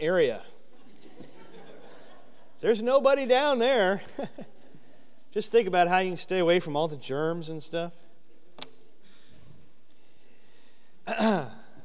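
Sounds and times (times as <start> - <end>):
speech: 0.0 - 0.5, 2.6 - 4.6, 5.3 - 8.0, 11.1 - 11.5
laughter: 0.7 - 2.8, 3.8 - 5.1
rough raspy throat clearing: 11.1 - 11.8.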